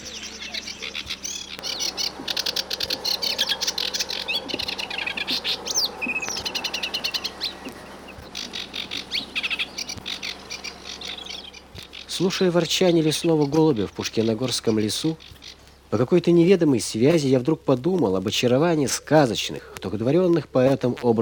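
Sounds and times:
reed warblers chattering by a quiet river near a mill: 0:00.0 - 0:20.2
speech: 0:12.2 - 0:15.3, 0:15.9 - 0:21.2.

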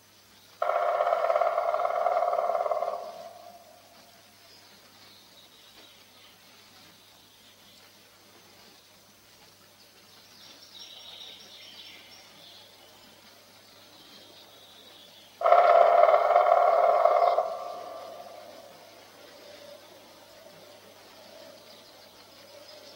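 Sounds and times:
black woodpecker drumming in a forest: 0:00.6 - 0:04.2, 0:15.4 - 0:22.9.

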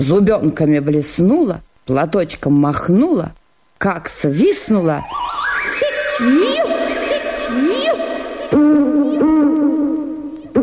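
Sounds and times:
speech: 0:00.0 - 0:06.7
voice imitating an eagle owl's hooting: 0:05.8 - 0:10.6.

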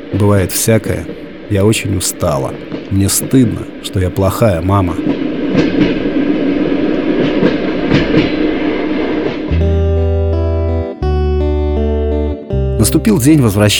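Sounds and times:
train carriage rolling on rails: 0:00.0 - 0:09.5
loud sustained tonal blare: 0:00.0 - 0:13.6
speech: 0:00.1 - 0:06.0, 0:12.8 - 0:13.7.

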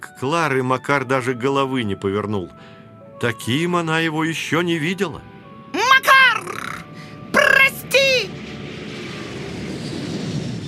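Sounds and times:
speech: 0:00.2 - 0:05.3
airplane taking off with engine roar: 0:03.6 - 0:10.6.

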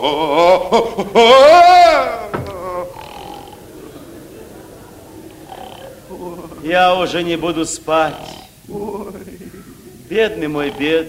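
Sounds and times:
speech: 0:00.0 - 0:01.8, 0:06.7 - 0:09.0, 0:10.1 - 0:11.0
laughter: 0:00.0 - 0:11.0
man snoring loudly: 0:02.2 - 0:03.7, 0:05.4 - 0:11.0.

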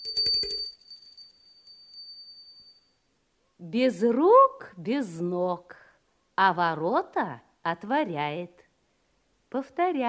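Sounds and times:
small hand bell ringing: 0:00.0 - 0:03.0
speech: 0:03.6 - 0:05.8, 0:06.4 - 0:08.6, 0:09.5 - 0:10.0.

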